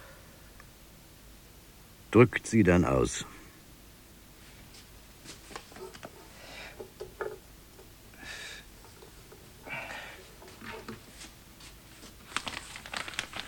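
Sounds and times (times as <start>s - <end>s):
speech: 2.1s - 3.4s
small newspaper rustles: 10.2s - 13.4s.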